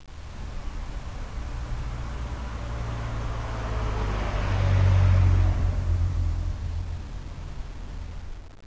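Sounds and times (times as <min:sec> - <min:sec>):
car passing by: 0:00.3 - 0:08.2.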